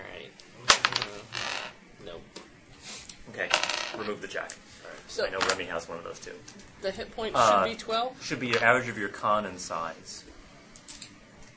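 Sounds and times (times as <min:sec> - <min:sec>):
dice rolling on a table: 0:00.7 - 0:01.8, 0:03.4 - 0:04.1, 0:05.4 - 0:05.6
speech: 0:03.4 - 0:10.3.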